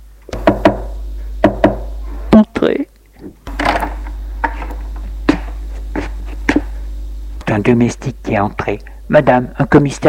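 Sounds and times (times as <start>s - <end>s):
low steady hum: 0.0s - 10.0s
sharp knocks on a door: 0.3s - 1.9s
speech: 2.6s - 2.9s, 7.6s - 10.0s.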